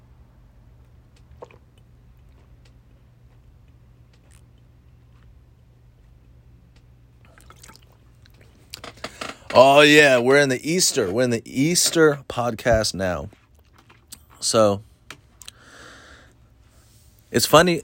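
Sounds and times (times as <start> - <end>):
steady low hum: 0.0 - 17.8
wet mouth clicks: 1.2 - 2.4, 4.1 - 4.5
swallowing sounds: 1.2 - 2.5, 7.2 - 8.8
sipping from a glass of water: 1.3 - 1.6, 7.2 - 8.5
speech: 9.6 - 13.4, 14.4 - 14.9, 17.3 - 17.8.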